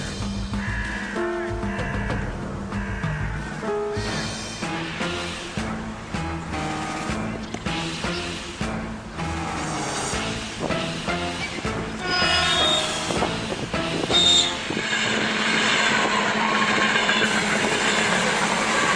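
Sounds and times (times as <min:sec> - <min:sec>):
locomotive approaching on a railway track on the outskirts of Krasnodar: 0:00.0 - 0:18.9
brief high wheel squeals of a locomotive: 0:11.1 - 0:18.9.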